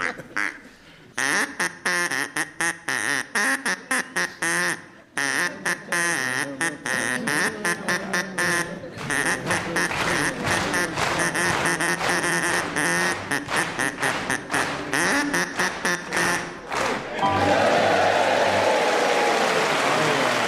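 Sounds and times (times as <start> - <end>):
quacking duck toy squeaking a nursery rhyme melody: 1.2 - 10.0, 10.7 - 16.6
audience applause: 9.0 - 20.4.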